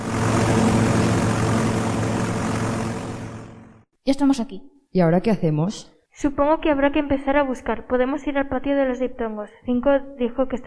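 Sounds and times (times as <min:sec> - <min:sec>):
airplane engine roar: 0:00.0 - 0:03.8
low propeller drone: 0:00.0 - 0:03.9
speech: 0:04.1 - 0:10.6.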